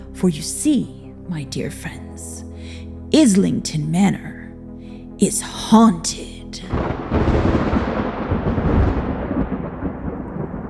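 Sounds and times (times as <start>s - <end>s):
speech: 0.2s - 2.4s, 3.1s - 4.3s, 5.2s - 7.0s
loud sustained rumble of thunder: 6.6s - 10.6s
rain pelting the windows: 6.7s - 10.6s.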